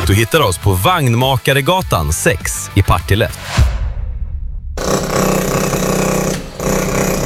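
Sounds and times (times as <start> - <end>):
speech: 0.1 - 3.6
hydraulic rammer hammering: 4.8 - 7.2.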